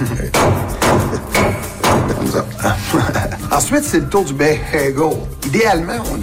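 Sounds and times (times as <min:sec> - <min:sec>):
laughter: 0:00.0 - 0:03.9
clove being crushed with dull heavy thumps: 0:00.3 - 0:02.5
speech: 0:03.7 - 0:06.2.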